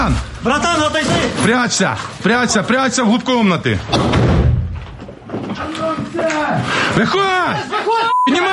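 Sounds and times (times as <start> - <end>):
speech: 0.0 - 4.5, 6.3 - 8.5
heavy booming thuds and crash of a door being forced in: 3.9 - 5.0.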